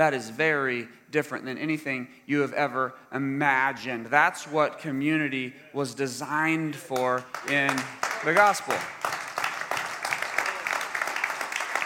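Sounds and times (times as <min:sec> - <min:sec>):
speech: 0:00.0 - 0:09.2
audience applauding: 0:07.0 - 0:11.8.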